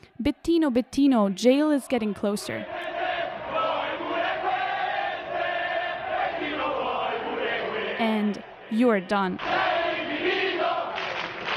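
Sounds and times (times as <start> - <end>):
speech: 0.2 - 3.0, 8.0 - 9.6
angry crowd shouting and jeering at a man: 2.6 - 8.7, 9.4 - 11.4.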